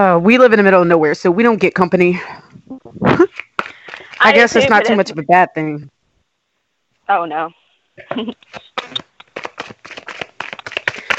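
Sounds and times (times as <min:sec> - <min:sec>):
speech: 0:00.0 - 0:03.4, 0:04.2 - 0:06.0, 0:07.1 - 0:09.0
tarot cards being shuffled and drawn from a deck outdoors: 0:03.2 - 0:04.8, 0:08.3 - 0:11.1.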